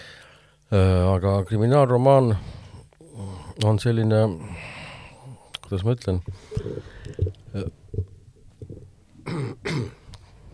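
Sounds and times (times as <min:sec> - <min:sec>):
speech: 0:00.7 - 0:02.5, 0:03.2 - 0:04.8, 0:05.7 - 0:07.8
short throat-clearing grunts: 0:09.2 - 0:10.0
harsh imitated coughs: 0:09.2 - 0:10.1.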